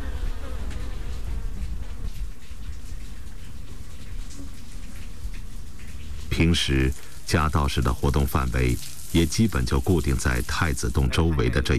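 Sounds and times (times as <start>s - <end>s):
many bees buzzing around a hive in a cupboard: 0.0s - 1.3s
speech: 6.4s - 11.7s.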